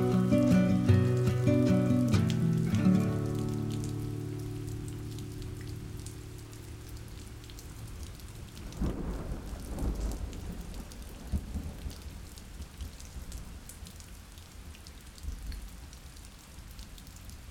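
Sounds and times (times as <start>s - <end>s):
steady rain pattering down: 0.0s - 17.4s
low rumble of thunder: 8.4s - 11.8s.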